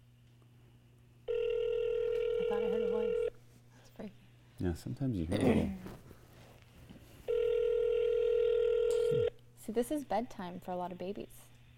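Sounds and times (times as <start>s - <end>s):
telephone tone on an outgoing call: 1.3s - 3.3s, 7.3s - 9.3s
speech: 4.0s - 6.0s, 9.7s - 11.5s.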